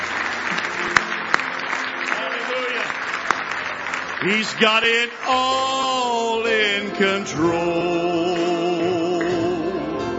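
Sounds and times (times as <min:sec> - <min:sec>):
sharp individual claps: 0:00.0 - 0:05.6
church congregation clapping hands in praise during a morning worship service: 0:00.0 - 0:10.0
speech: 0:04.2 - 0:08.5.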